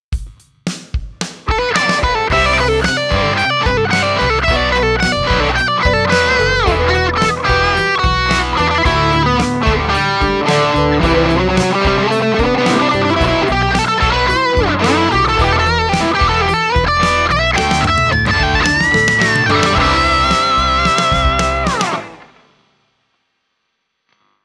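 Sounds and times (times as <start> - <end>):
solo through a multi-effects unit: 1.6 - 22.4.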